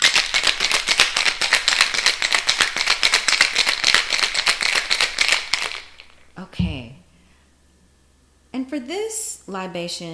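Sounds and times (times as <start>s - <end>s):
ice rattling in a cocktail shaker with lime juice, lemon juice and simple syrup: 0.0s - 6.2s
speech: 8.7s - 10.1s.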